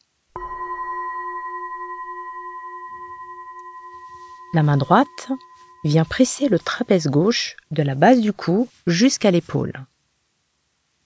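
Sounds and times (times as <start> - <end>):
single gong struck for a self-massage exercise: 0.4 - 7.4
speech: 4.5 - 9.9.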